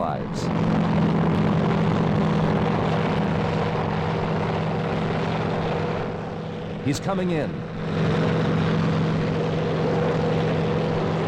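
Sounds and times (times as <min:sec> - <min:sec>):
military helicopter rotor and engine drone: 0:00.0 - 0:11.2
speech: 0:06.8 - 0:08.1.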